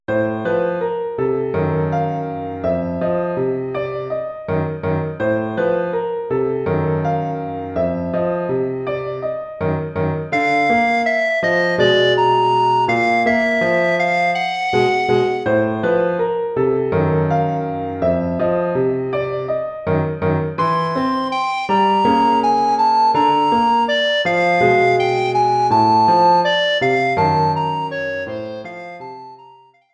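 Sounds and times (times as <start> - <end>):
piano in an alto recorder and piano duo: 0.1 - 29.9
alto recorder playing in 7/8 time: 10.3 - 15.6, 20.6 - 29.8.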